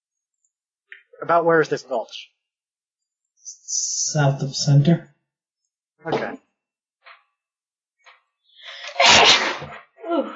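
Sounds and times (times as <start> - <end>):
speech: 1.2 - 2.3, 3.5 - 5.1, 6.0 - 6.4
sneeze: 8.8 - 9.9.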